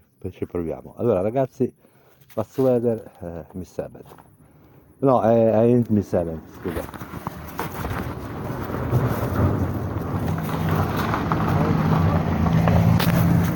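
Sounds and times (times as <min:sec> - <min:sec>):
speech: 0:00.2 - 0:04.3, 0:05.0 - 0:07.3
car passing by: 0:07.8 - 0:13.5.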